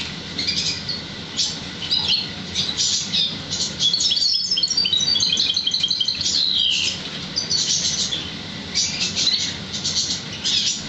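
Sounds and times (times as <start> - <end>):
Oriental magpie-robin singing: 0.4 - 10.8.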